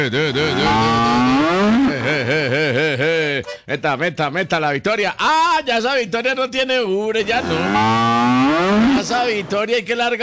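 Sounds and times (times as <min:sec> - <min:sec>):
laughter: 0:00.0 - 0:03.6
speech: 0:00.0 - 0:10.2
cow mooing at milking time on a farm: 0:00.5 - 0:02.0, 0:07.2 - 0:09.3.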